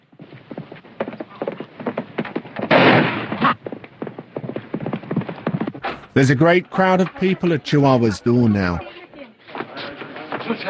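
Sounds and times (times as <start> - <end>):
gunshots in a radio drama shootout: 2.6 - 3.6
speech: 6.2 - 8.9, 10.5 - 10.6.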